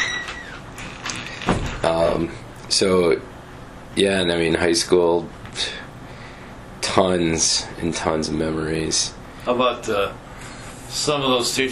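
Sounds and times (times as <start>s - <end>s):
door swinging shut with a short thump: 0.0s - 2.1s
speech: 2.2s - 3.3s, 4.0s - 5.8s, 7.0s - 10.2s, 10.9s - 11.7s.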